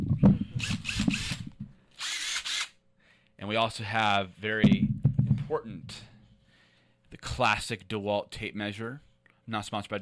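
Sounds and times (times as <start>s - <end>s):
power drill whirring: 0.6s - 2.8s
speech: 3.4s - 6.1s, 7.2s - 9.9s.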